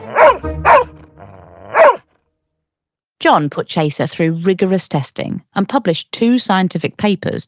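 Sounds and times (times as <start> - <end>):
dog barking: 0.0 - 2.0
speech: 3.2 - 7.4.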